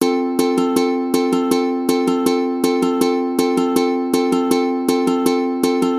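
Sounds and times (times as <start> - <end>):
ukulele strumming rhythms: 0.0 - 5.9.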